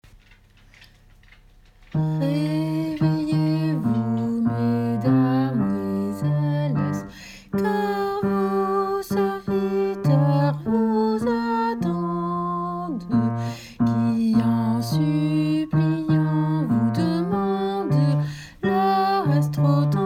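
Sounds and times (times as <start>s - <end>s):
bass: 0.0s - 7.8s, 8.6s - 20.0s.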